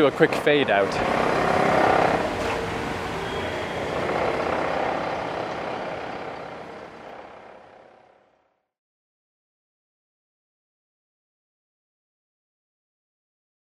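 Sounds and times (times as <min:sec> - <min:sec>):
speech: 0:00.0 - 0:01.7
heavy truck rumbling past: 0:00.0 - 0:08.5
road traffic roaring: 0:00.0 - 0:08.5.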